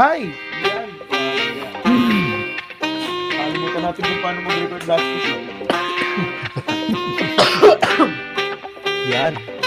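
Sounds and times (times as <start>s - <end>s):
speech: 0.0s - 0.7s, 3.9s - 7.2s, 9.1s - 9.5s
laughter: 1.0s - 4.3s, 5.6s - 8.3s
person coughing roughly: 1.7s - 2.6s, 5.7s - 8.3s.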